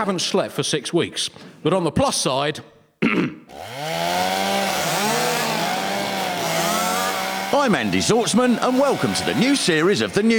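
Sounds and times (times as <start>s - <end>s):
speech: 0.0s - 3.7s, 7.6s - 10.3s
chainsaw revving: 3.5s - 10.3s.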